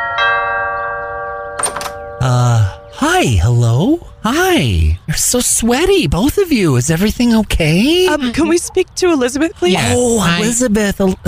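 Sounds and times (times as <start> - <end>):
doorbell of a house chiming a two-note ding-dong: 0.0 - 2.2
speech: 2.3 - 11.2.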